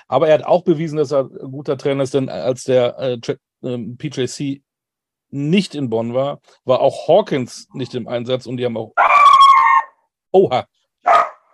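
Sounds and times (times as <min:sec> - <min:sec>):
speech: 0:00.1 - 0:04.7, 0:05.3 - 0:09.0, 0:10.3 - 0:11.3
dog barking: 0:09.0 - 0:10.0, 0:11.0 - 0:11.5.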